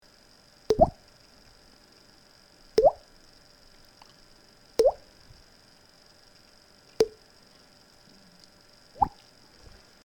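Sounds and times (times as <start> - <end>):
bubbling blub: 0.7 - 1.0, 2.8 - 3.0, 9.0 - 9.2.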